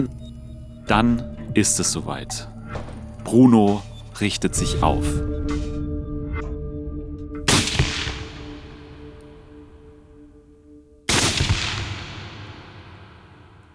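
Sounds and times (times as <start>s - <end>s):
speech: 0.9s - 2.5s, 3.2s - 5.7s
gunshots with decay: 7.5s - 10.1s, 11.1s - 13.7s.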